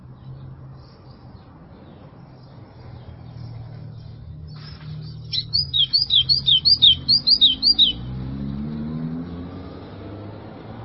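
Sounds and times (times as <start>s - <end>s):
white-throated seedeater singing slurred two-part whistles: 5.1s - 8.1s.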